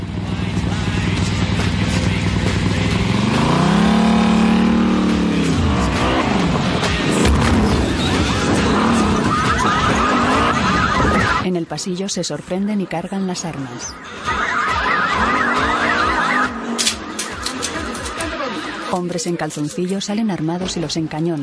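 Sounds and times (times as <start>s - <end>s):
motorcycle engine roaring as it drives over parked cars: 0.0s - 11.4s, 13.9s - 18.9s
speech: 11.8s - 14.6s, 18.9s - 21.4s.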